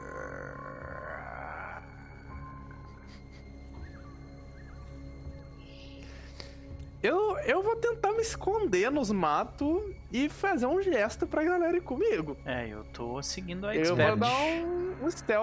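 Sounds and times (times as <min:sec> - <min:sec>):
deep rumbling creature roar: 0:00.0 - 0:02.4
sharper louder growling cry: 0:00.0 - 0:02.4
low droning background: 0:00.0 - 0:15.4
speech: 0:07.0 - 0:15.4.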